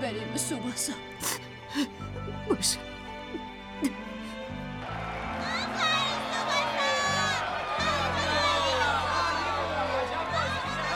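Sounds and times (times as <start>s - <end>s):
speech: 0.4s - 4.2s
large crowd of spectators cheering and shouting in a stadium: 4.2s - 10.9s.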